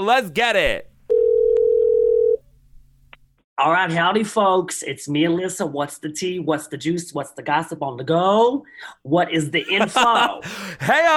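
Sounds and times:
speech: 0.0 - 0.9, 3.6 - 11.1
telephone dial tone while placing a call: 1.1 - 2.4.

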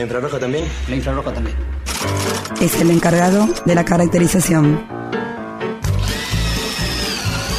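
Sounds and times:
speech: 0.0 - 5.1
power drill boring through a ceiling: 5.8 - 7.5.

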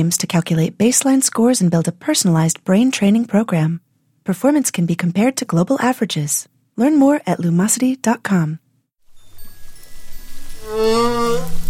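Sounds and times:
speech: 0.0 - 8.6, 10.7 - 11.6
humpback whale singing: 10.4 - 11.6.

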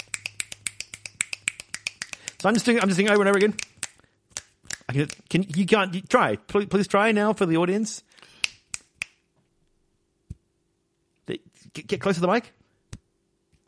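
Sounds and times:
fingers snapping: 0.0 - 5.7, 8.3 - 9.2
speech: 2.4 - 3.8, 4.9 - 8.3, 11.9 - 12.6.

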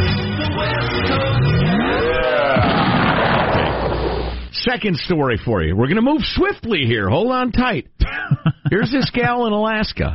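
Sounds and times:
rising engine-like whine: 1.1 - 4.5
explosion sound effect: 1.7 - 4.5
speech: 4.7 - 10.1
laughter: 8.0 - 9.5.

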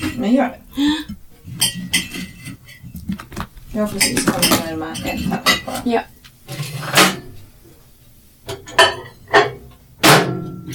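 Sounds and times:
speech: 0.0 - 1.2, 3.8 - 6.2
low kitchen bustle: 0.0 - 10.7
plate and cutlery clinking as pancakes are stacked onto a plate: 1.1 - 7.4, 8.5 - 10.7.

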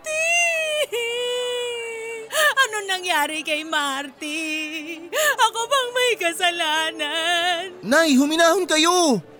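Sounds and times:
woman wailing and sobbing: 0.1 - 3.1
speech: 2.7 - 9.3.

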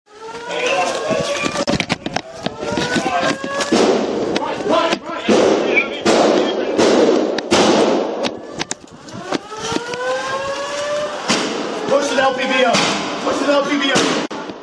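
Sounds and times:
wailing alarm tone: 0.1 - 3.9, 8.3 - 12.7
voices: 0.1 - 7.0, 8.2 - 14.6
gunshots in police body camera footage of a mass shooting: 0.5 - 9.8, 11.1 - 11.8, 12.6 - 14.5.

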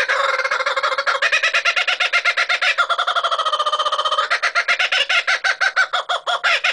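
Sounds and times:
kookaburra cackling laugh call: 0.0 - 6.7.

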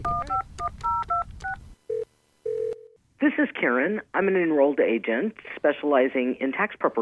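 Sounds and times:
cell phone keypad dialing tones: 0.0 - 3.0
speech: 3.6 - 7.0.

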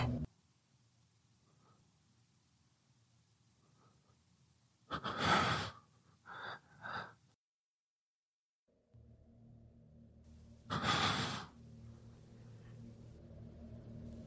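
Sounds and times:
low rumbling background: 0.0 - 0.3, 8.7 - 14.2
heavy agitated frightened breathing: 4.9 - 7.2, 10.7 - 11.6.

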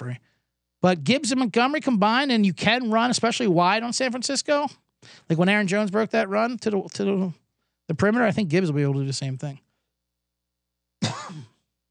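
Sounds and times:
speech: 0.1 - 9.6
harsh cough: 11.0 - 11.8.

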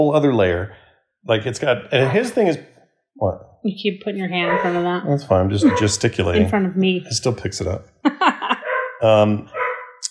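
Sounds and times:
speech: 0.0 - 9.6
laughter: 1.5 - 2.6, 5.5 - 6.6, 7.6 - 9.4
dog barking and yelping: 4.4 - 4.9, 8.6 - 10.0.

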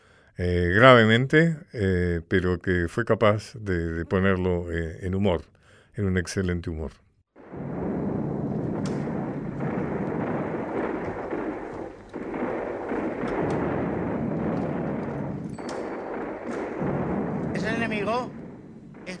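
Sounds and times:
speech: 0.4 - 7.7
war sound effect artillery booms: 7.4 - 19.1
war sound effect gunfire: 7.4 - 19.1.

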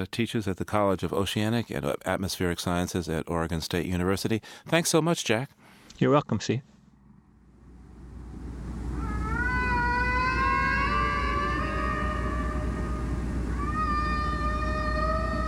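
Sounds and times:
speech: 0.0 - 6.7
whale song: 8.3 - 15.4.

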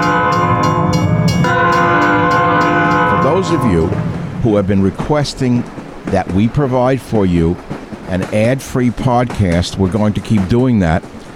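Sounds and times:
train horn blaring: 0.0 - 4.4
train wheels clattering: 0.0 - 11.3
speech: 3.4 - 11.2.

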